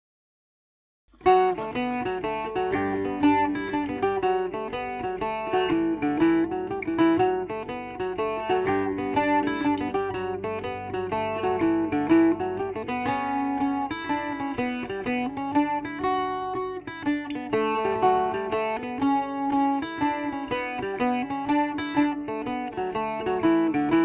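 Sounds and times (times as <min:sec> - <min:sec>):
octave mandola mandolin playing: 0:01.2 - 0:24.0.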